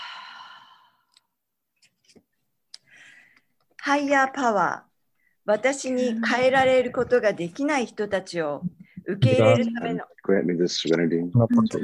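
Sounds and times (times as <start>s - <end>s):
long soft deep breath in and out: 0.0s - 1.2s
speech: 3.8s - 4.9s, 5.5s - 11.8s.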